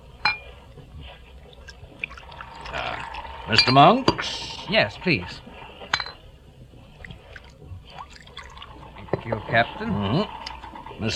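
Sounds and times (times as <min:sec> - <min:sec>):
sharp glassy clink: 0:00.2 - 0:00.4, 0:03.6 - 0:03.9, 0:05.9 - 0:06.2
wine trickling into a glass: 0:01.6 - 0:03.6
speech: 0:03.5 - 0:05.5, 0:09.5 - 0:10.4, 0:11.0 - 0:11.1.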